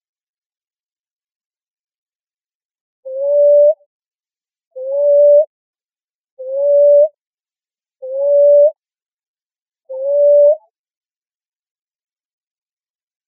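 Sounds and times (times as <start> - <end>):
Common ground dove cooing in Arizona: 3.1 - 3.8, 4.8 - 5.5, 6.4 - 7.2, 8.0 - 8.8, 9.9 - 10.6.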